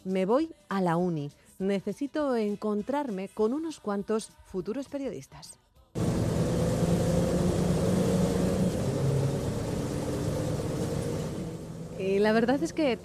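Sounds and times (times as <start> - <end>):
speech: 0.0 - 5.6, 12.0 - 13.0
broadband road noise: 6.0 - 13.0
bus engine rumble in enclosed vehicle cabin: 6.0 - 13.0.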